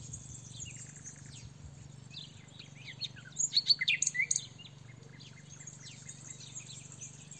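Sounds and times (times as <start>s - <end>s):
common nightingale Luscinia megarhynchos song: 0.0s - 7.3s.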